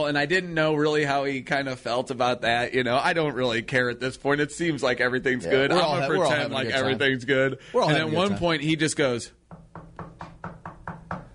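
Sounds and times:
speech: 0.0 - 9.4
knocking on a door: 9.4 - 11.3.

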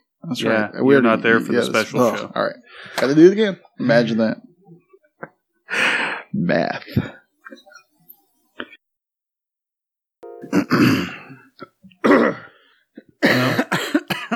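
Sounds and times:
speech: 0.3 - 4.5, 5.2 - 7.7, 10.4 - 11.2
two people coughing wetly: 10.4 - 11.4, 12.0 - 12.5, 13.2 - 14.3
phlegmy throat clearing: 10.5 - 14.3.

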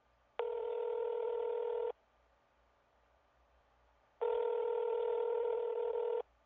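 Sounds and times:
telephone dialing tones of a phone call: 0.4 - 1.9, 4.2 - 6.2.

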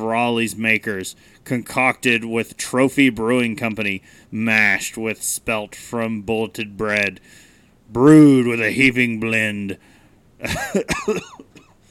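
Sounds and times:
speech: 0.1 - 11.4
harsh coughing: 10.4 - 11.8.

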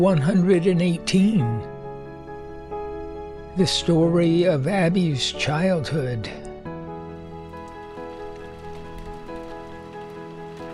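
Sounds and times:
speech: 0.0 - 1.7, 3.6 - 6.5
rain drumming on the roof of a shanty: 7.3 - 10.7.

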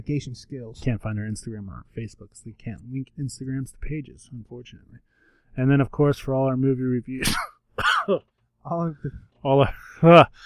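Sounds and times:
speech: 0.0 - 10.4
person coughing and clearing throat: 7.2 - 8.2.

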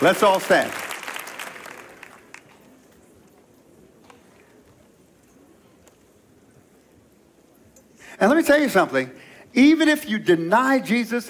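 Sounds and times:
speech: 0.0 - 0.9, 8.2 - 11.2
audience applause: 0.0 - 2.7.

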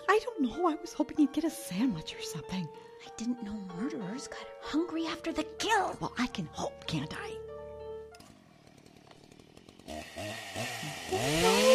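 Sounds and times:
speech: 0.2 - 7.4, 9.9 - 11.7
chainsaw engine revving: 8.2 - 11.7.

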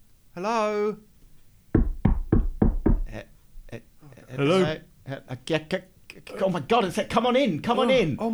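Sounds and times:
speech: 0.4 - 1.1, 3.1 - 8.3
firm knocks on a bunker door: 1.8 - 3.8.

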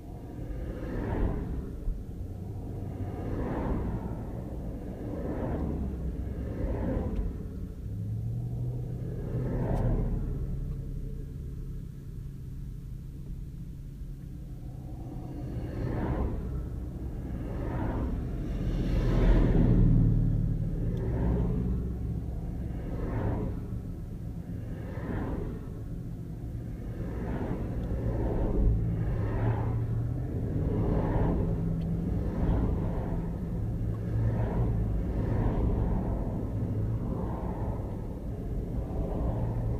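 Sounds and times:
road traffic passing by with engines and tires rumbling: 0.0 - 39.7.

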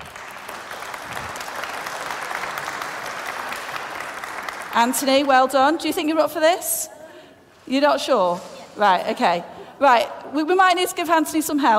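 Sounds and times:
crowd applause: 0.0 - 5.1
speech: 4.8 - 7.0, 7.7 - 11.7.

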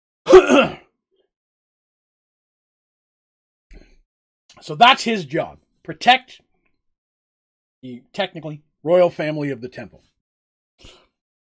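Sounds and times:
person clearing throat: 0.3 - 0.9
speech: 4.6 - 6.5, 7.8 - 10.1, 10.8 - 11.0.

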